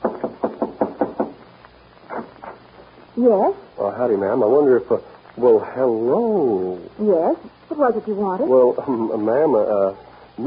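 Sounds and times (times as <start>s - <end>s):
knocking on the wooden door of a ranch house: 0.0s - 1.4s
speech: 3.2s - 10.4s.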